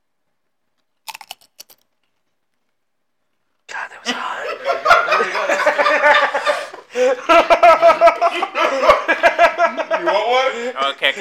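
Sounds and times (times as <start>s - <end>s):
tortilla chips being bitten and crunched: 0.8s - 2.3s
laughter: 4.1s - 11.1s
speech: 10.5s - 11.1s.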